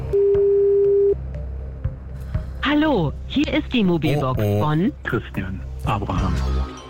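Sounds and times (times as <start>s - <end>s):
mid-pitched telephone ringback tone beep: 0.2s - 1.2s
speech: 2.8s - 6.7s.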